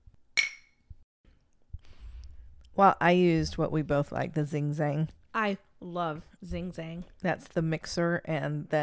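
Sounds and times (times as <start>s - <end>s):
glasses of Bloody Mary clinking in a toast: 0.4s - 0.8s
speech: 2.8s - 8.8s.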